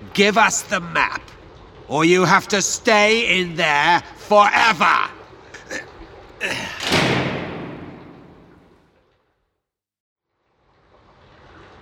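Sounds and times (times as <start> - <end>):
speech: 0.2 - 6.8
heavy door slamming shut: 6.7 - 8.8.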